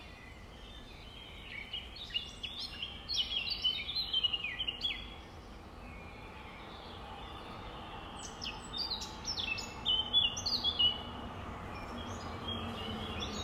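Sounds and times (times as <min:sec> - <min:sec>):
nightingale song: 0:00.0 - 0:13.4.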